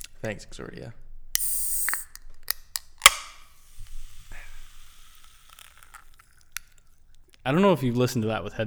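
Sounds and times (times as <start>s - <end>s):
gas hissing from an opened fizzy drink: 0.0s - 0.6s, 1.2s - 7.6s
speech: 0.2s - 1.5s, 7.4s - 8.6s
fizzy drink container clicks: 1.4s - 7.5s.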